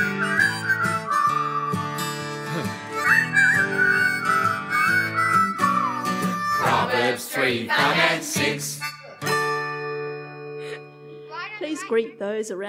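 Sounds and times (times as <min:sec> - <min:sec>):
wavering whistled melody: 0:00.0 - 0:07.2, 0:08.7 - 0:11.0
steady instrumental music: 0:00.0 - 0:11.3
speech: 0:07.5 - 0:08.8, 0:11.8 - 0:12.6.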